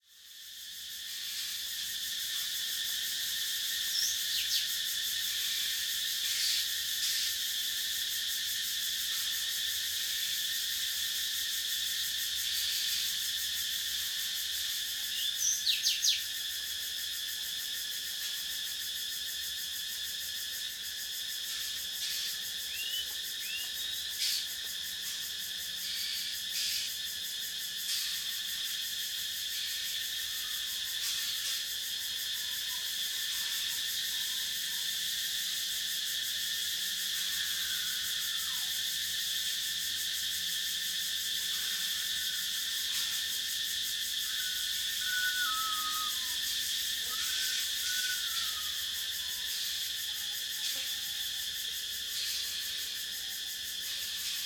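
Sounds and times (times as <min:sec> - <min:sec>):
forest cicadas at night in Thailand: 0:00.0 - 0:54.4
forest insects at night in Thailand: 0:00.0 - 0:54.4
forest birds at night in Thailand: 0:45.0 - 0:46.4.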